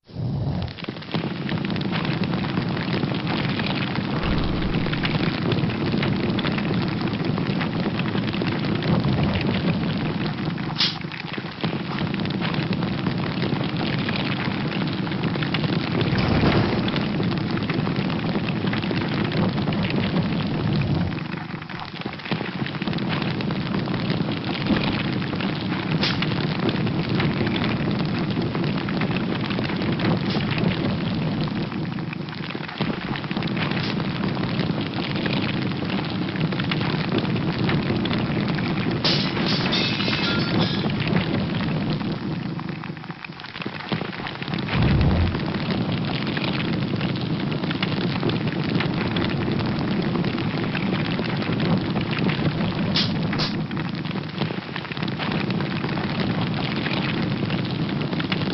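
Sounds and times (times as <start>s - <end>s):
flame: 0.0s - 58.5s.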